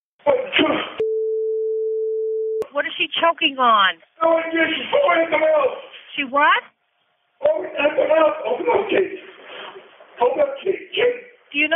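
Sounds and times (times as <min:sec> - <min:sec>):
speech: 0:00.2 - 0:01.0, 0:02.8 - 0:06.7, 0:07.4 - 0:09.3, 0:10.2 - 0:11.7
steady telephone tone of a 911 emergency call: 0:01.0 - 0:02.6.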